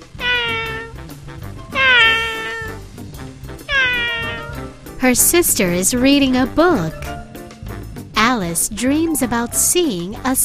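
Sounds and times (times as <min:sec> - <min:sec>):
cat meowing: 0:00.0 - 0:01.0, 0:01.7 - 0:02.8, 0:03.7 - 0:04.8
speech: 0:05.0 - 0:07.2, 0:08.5 - 0:10.4.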